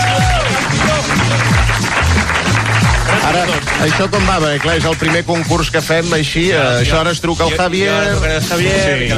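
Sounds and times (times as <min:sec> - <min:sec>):
people cheering: 0:00.0 - 0:05.0
audience applause for a contest participant: 0:00.0 - 0:05.6
speech: 0:03.4 - 0:09.1.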